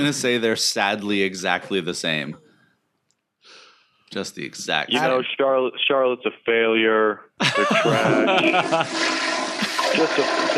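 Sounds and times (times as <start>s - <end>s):
speech: 0.0s - 2.4s, 3.4s - 9.4s, 10.0s - 10.5s
laughter: 7.4s - 9.0s, 9.6s - 10.5s
toilet flushing: 8.0s - 10.5s.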